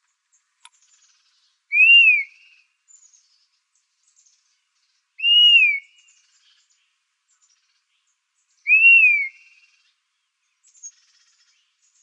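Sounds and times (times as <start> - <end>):
Dusky-capped flycatcher drawn-out whistled call in Arizona: 1.7 - 2.6, 5.2 - 6.1, 8.7 - 9.7.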